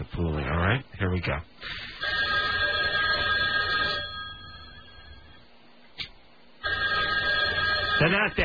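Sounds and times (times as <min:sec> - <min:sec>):
speech: 0:00.0 - 0:02.2, 0:08.0 - 0:08.4
telephone ringing over a phone line: 0:02.0 - 0:05.5, 0:06.6 - 0:08.4.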